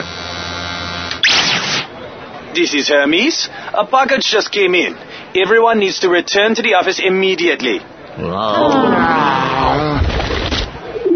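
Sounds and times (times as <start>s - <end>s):
speech: 2.6s - 9.6s
bird cooing: 10.2s - 11.1s.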